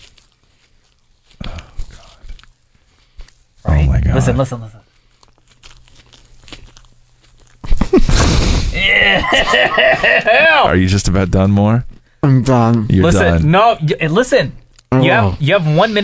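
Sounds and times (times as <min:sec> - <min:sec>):
man chewing marshmallow candy: 0:00.0 - 0:03.6, 0:04.9 - 0:08.0
speech: 0:03.7 - 0:04.8, 0:09.3 - 0:16.0
laughter: 0:08.8 - 0:10.7.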